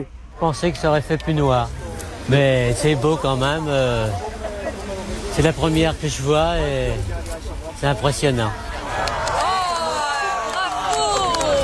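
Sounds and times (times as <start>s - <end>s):
speech: 0.0s - 4.3s, 5.4s - 8.7s
dense babble of excited voices and shouts: 0.0s - 11.6s
large outdoor crowd in France applauding the 1999 total solar eclipse: 8.7s - 11.6s.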